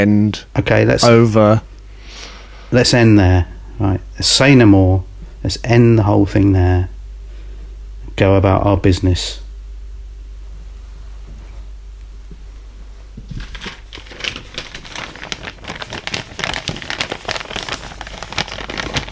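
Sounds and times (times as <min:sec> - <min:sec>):
speech: 0:00.0 - 0:01.7, 0:02.7 - 0:07.0, 0:08.2 - 0:09.4
low hum: 0:00.0 - 0:19.0
something crumpled up: 0:12.9 - 0:19.0.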